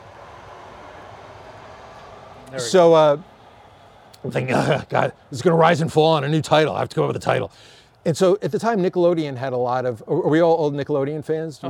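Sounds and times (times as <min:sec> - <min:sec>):
train rumbling past: 0:00.0 - 0:07.5
speech: 0:02.5 - 0:03.3, 0:04.2 - 0:11.6.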